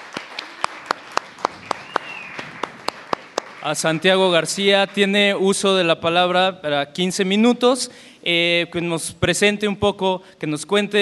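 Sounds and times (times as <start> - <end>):
audience hand clapping at a community radio gathering: 0.0 - 5.1
thin high whistle-like tone: 1.8 - 2.4
speech: 3.6 - 10.9.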